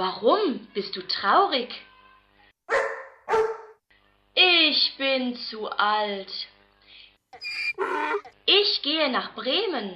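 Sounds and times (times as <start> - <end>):
speech: 0.0 - 1.9, 2.7 - 3.4, 4.4 - 6.5, 7.3 - 9.9
sad old dog barking: 2.7 - 3.8.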